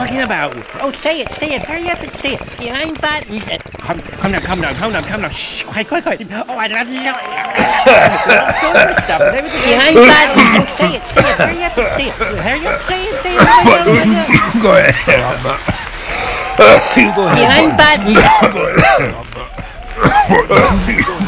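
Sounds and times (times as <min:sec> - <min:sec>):
voices talking: 0:00.0 - 0:21.2
laughter: 0:07.3 - 0:21.2
coughing and throat clearing: 0:07.5 - 0:12.4, 0:13.4 - 0:14.8, 0:16.6 - 0:21.2.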